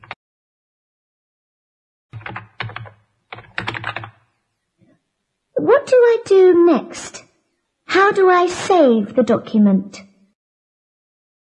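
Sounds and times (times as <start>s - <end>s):
computer keyboard typing as homework is written in a new document: 2.2s - 4.3s
speech: 6.1s - 7.3s, 7.9s - 10.1s.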